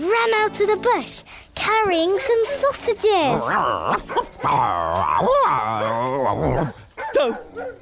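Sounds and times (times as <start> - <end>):
speech: 0.2 - 7.8
lion-like dog yipping: 2.2 - 7.8
lion-like dog whining and whimpering: 3.3 - 7.7.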